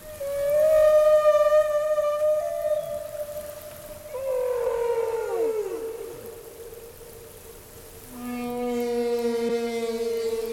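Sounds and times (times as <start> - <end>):
male whale song: 0.0 - 10.5.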